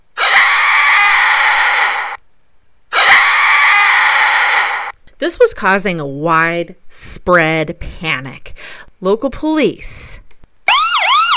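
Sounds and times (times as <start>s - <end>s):
long loud shrill unearthly screams: 0.2s - 2.2s, 2.9s - 5.0s
speech: 5.2s - 10.2s.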